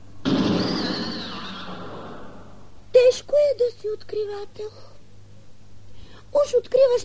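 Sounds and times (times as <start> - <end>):
explosion blast as a box is opened: 0.2 - 2.7
speech: 3.6 - 5.0, 6.3 - 7.0.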